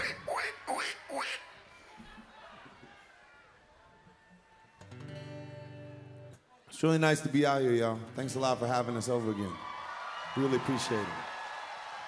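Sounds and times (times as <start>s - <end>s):
ducks being fed quacking: 0.0s - 1.5s
speech: 6.8s - 9.7s, 10.3s - 11.3s.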